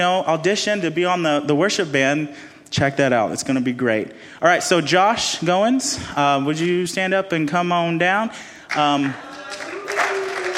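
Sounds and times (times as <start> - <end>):
speech: 0.0 - 9.6
audience clapping: 8.7 - 10.5.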